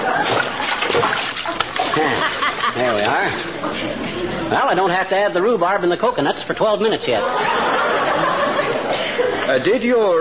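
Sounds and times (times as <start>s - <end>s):
diced potatoes dropping into a pot of water: 0.2s - 2.0s
laughter: 1.4s - 4.5s, 7.1s - 9.6s
speech: 2.9s - 7.6s, 9.5s - 10.1s.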